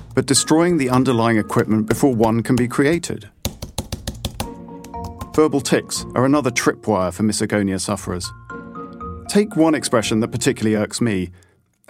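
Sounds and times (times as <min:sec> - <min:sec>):
speech: 0:00.2 - 0:03.3, 0:05.4 - 0:08.5, 0:09.3 - 0:11.8
heavy typing on a computer keyboard: 0:03.4 - 0:05.4.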